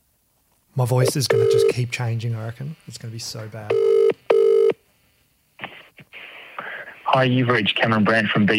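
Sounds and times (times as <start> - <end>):
speech: 0.8 - 4.2, 7.2 - 8.5
electronic telephone tone: 1.0 - 1.8, 3.7 - 4.8.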